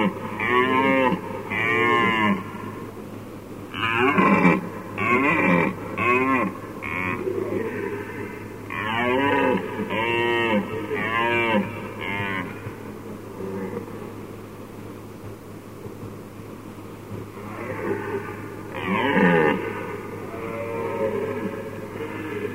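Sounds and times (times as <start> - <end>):
red deer roaring: 0.0 - 2.5, 3.7 - 12.7, 17.4 - 22.5
steady low hum: 0.0 - 22.5.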